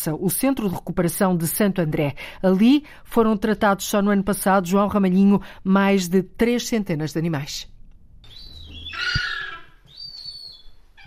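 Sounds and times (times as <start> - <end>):
speech: 0.0 - 7.7
gulls calling: 8.3 - 11.0.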